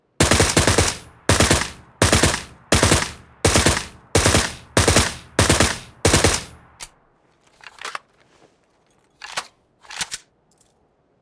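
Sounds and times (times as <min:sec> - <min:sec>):
suppressed Beryl rifle burst fire: 0:00.0 - 0:06.9.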